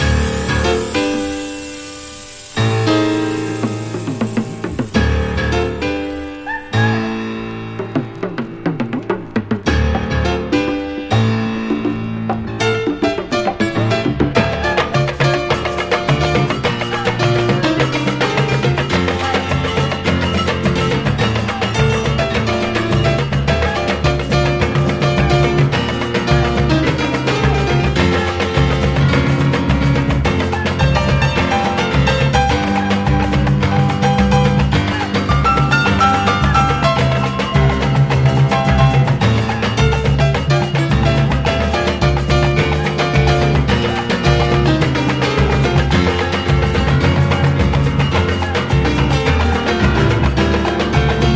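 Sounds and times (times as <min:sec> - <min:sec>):
batucada drumming: 0:00.0 - 0:51.3.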